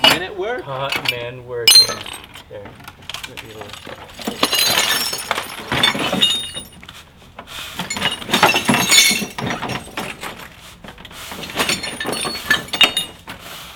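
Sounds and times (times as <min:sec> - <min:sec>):
speech: 0:00.2 - 0:07.1
glass being smashed repeatedly: 0:01.7 - 0:02.4, 0:04.2 - 0:06.8, 0:07.9 - 0:10.3, 0:11.5 - 0:13.2.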